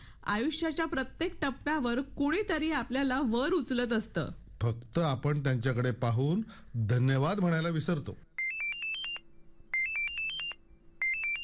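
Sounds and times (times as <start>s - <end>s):
speech: 0.2s - 8.3s
phone ringtone with quick high electronic beeping notes: 8.4s - 11.4s.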